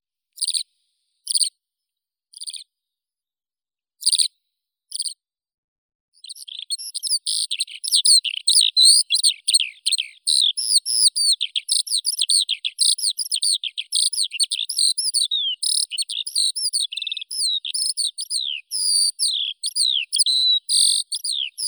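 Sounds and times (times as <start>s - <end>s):
Alauda arvensis skylark singing: 6.2s - 21.6s.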